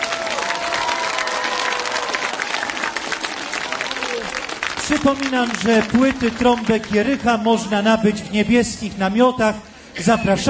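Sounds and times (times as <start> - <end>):
audience cheers and whistles: 0.0 - 2.4
large audience applauding a band: 0.0 - 8.0
speech: 4.9 - 10.4.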